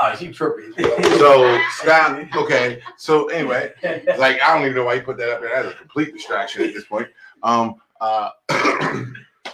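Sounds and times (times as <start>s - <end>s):
speech: 0.1s - 9.3s
laughter: 0.6s - 7.0s
person clearing throat: 8.4s - 9.3s
person coughing: 8.5s - 9.2s.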